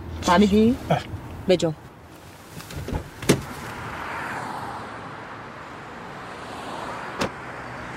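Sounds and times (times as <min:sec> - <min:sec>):
speech: 0:00.2 - 0:01.8
rustling and clunks of someone getting into a car: 0:02.2 - 0:03.8
car door thud: 0:02.7 - 0:03.6, 0:07.2 - 0:07.4.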